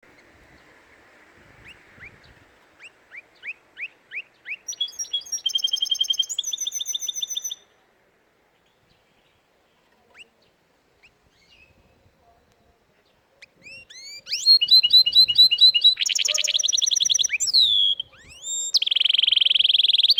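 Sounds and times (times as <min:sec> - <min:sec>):
canary singing: 0:01.6 - 0:07.7, 0:13.4 - 0:20.1.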